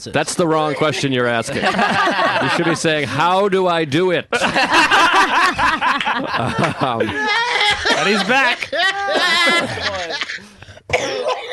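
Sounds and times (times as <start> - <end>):
speech: 0.0 - 10.4
laughter: 0.7 - 3.2, 4.3 - 11.5
person coughing harshly: 9.0 - 11.5.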